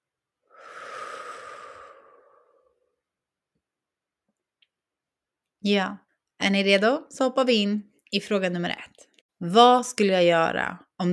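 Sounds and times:
long deep breath out: 0.5 - 3.0
speech: 5.6 - 11.1.

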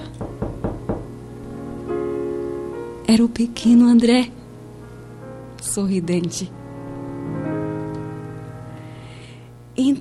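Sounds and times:
firm knocks on a wooden door: 0.1 - 1.2
low sustained tonal hum: 1.1 - 10.0
speech: 3.1 - 4.4, 5.8 - 6.6.

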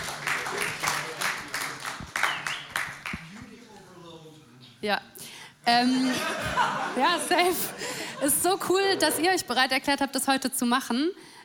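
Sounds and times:
crowd applause: 0.0 - 3.5
speech: 4.8 - 11.4
laughter: 5.8 - 9.5.

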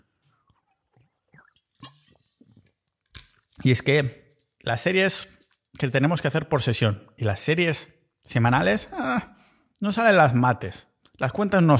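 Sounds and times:
person gulping sparkling mineral water: 0.2 - 3.6
speech: 3.6 - 11.7.

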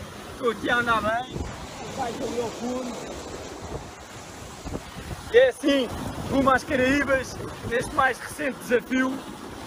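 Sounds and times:
waves sloshing and splashing against a kite-powered boat on the Atlantic: 0.0 - 9.6
speech: 0.4 - 3.9, 4.7 - 9.4
wind roaring across the microphone at sea: 1.2 - 8.3.

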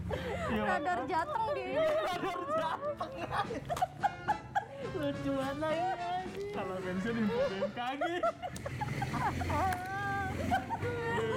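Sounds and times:
laughter: 0.0 - 11.3
speech: 0.1 - 4.2, 4.8 - 11.0
loud motorcycle passing by: 8.4 - 11.3.

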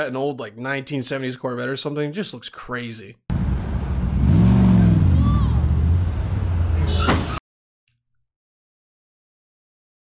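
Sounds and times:
speech: 0.0 - 3.4
car engine revving: 3.3 - 7.0.

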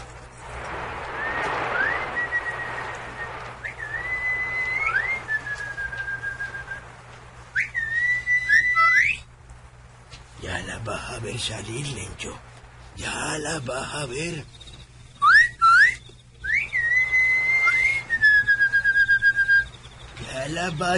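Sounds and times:
faint hissy background: 0.0 - 20.9
person whistling softly as a signal: 1.8 - 6.8, 7.5 - 9.3, 15.2 - 19.7
speech: 11.3 - 14.6, 20.6 - 20.9.

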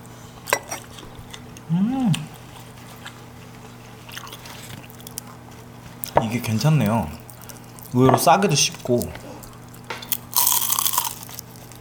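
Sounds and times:
biting and chewing crispy fried spring rolls: 0.8 - 6.1, 6.8 - 11.7
person humming: 1.7 - 2.3
speech: 1.7 - 2.3, 6.3 - 7.2, 7.9 - 9.2.

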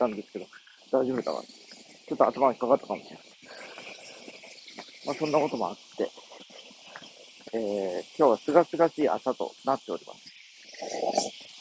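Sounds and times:
speech: 0.0 - 3.6, 5.0 - 6.2, 7.5 - 11.0
cicadas buzzing outdoors just after the rainy season: 0.0 - 11.5.

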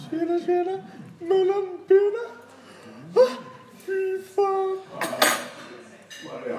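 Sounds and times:
speech: 0.1 - 2.1
dishes and cutlery clinking: 4.9 - 6.5.

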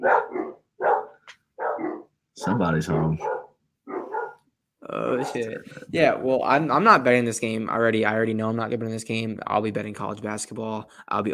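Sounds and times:
brief higher dog yip: 0.0 - 2.1, 3.2 - 4.4
dogs barking: 0.0 - 4.5, 5.2 - 5.5
speech: 2.4 - 3.4, 4.9 - 11.3.

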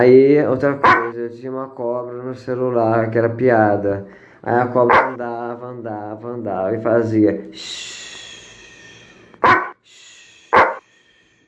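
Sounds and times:
speech: 0.0 - 8.1
dog barking from a phone app: 0.8 - 1.1, 4.9 - 5.2, 9.4 - 9.8, 10.5 - 10.8.

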